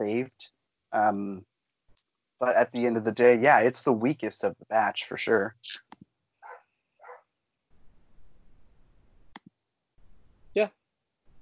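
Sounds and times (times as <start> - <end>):
speech: 0.0 - 1.5, 2.4 - 5.8, 10.6 - 10.8
dog barking: 6.4 - 7.2.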